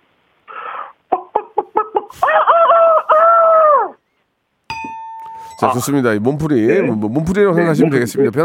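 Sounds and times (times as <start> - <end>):
human voice imitating a rooster crowing in the morning: 2.1 - 4.0
bell struck lightly: 4.7 - 6.0
speech: 5.6 - 8.4.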